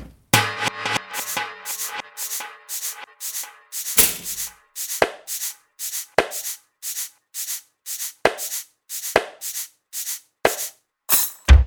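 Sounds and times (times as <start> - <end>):
kitchen drumkit mixed: 0.3 - 9.7, 10.5 - 11.6.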